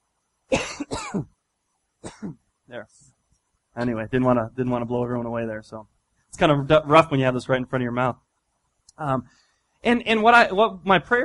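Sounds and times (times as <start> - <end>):
raspy throaty double cough: 0.5 - 1.3, 2.0 - 2.4
speech: 0.5 - 1.4, 2.0 - 3.2, 3.8 - 8.3, 9.0 - 11.2.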